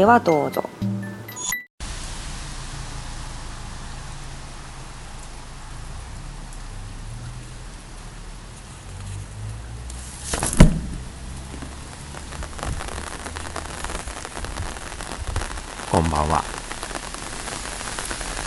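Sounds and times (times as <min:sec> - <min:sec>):
speech: 0:00.0 - 0:00.8, 0:16.1 - 0:16.6
steady rain pattering on a hard surface: 0:01.8 - 0:18.4
sharp knock: 0:10.5 - 0:11.1.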